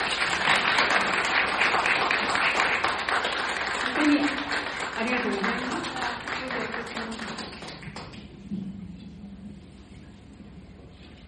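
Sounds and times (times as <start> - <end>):
many people at a church service clapping for a university choir: 0.0 - 8.3.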